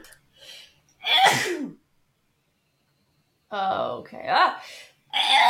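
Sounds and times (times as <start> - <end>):
person inhaling: 0.3 - 0.8
loud sneezes: 1.1 - 1.7, 5.2 - 5.4.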